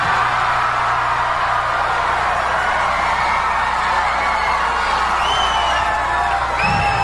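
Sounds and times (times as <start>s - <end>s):
large crowd cheering and roaring: 0.0s - 7.0s
scattered high whoops and whistles: 4.4s - 7.0s.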